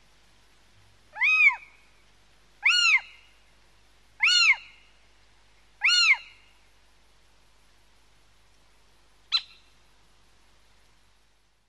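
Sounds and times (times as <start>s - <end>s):
little owl giving a mewing rise-and-fall call: 1.1s - 1.8s, 2.6s - 3.3s, 4.2s - 4.9s, 5.8s - 6.5s, 9.3s - 9.7s
little owl giving a brief sharp yelp: 1.2s - 1.7s, 2.6s - 3.3s, 4.2s - 4.8s, 5.8s - 6.4s, 9.3s - 9.7s.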